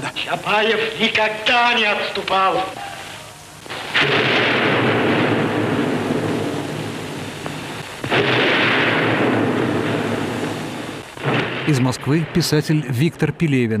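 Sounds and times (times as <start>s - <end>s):
speech: 0.3s - 2.8s, 11.7s - 13.7s
heavy cannon blasts in a film scene: 3.7s - 12.7s.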